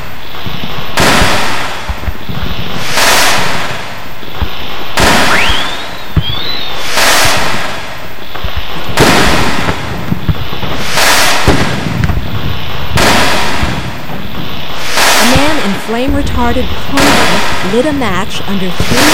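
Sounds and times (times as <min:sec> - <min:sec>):
brief rising whistle of a rocket: 0:00.0 - 0:17.9
loud firecrackers exploding: 0:00.0 - 0:19.1
speech: 0:16.4 - 0:19.1.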